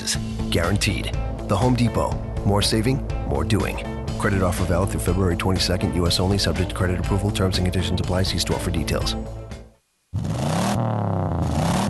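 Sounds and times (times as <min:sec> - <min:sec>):
speech: 0:00.1 - 0:09.4
car engine roaring and revving loudly: 0:10.2 - 0:11.8.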